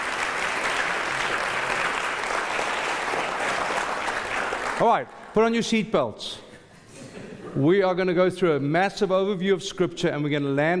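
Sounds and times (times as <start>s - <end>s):
applause from a sizable audience: 0.0s - 5.4s
speech: 4.8s - 6.5s, 7.6s - 10.7s.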